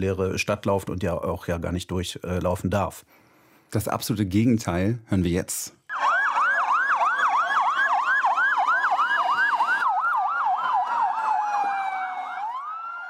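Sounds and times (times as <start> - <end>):
speech: 0.0 - 5.8
ambulance siren wailing up and down on a city street: 5.9 - 13.0.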